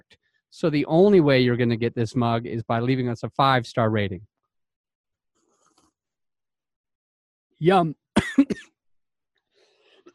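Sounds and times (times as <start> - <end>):
speech: 0.1 - 4.3, 7.6 - 8.7
sharp double cough while drinking coffee: 8.2 - 8.6.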